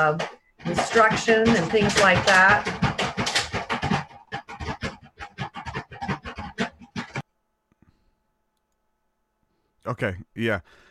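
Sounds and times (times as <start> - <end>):
speech: 0.0 - 2.8, 9.9 - 10.9
dog scratching and pawing at a door trying to get in: 0.0 - 7.2.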